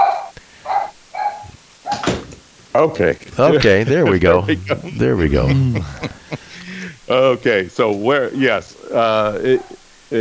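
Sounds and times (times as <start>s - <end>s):
puppy giving high-pitched yelping whines: 0.0s - 2.4s
laughter: 2.0s - 10.1s
speech: 2.8s - 6.2s, 7.1s - 10.1s.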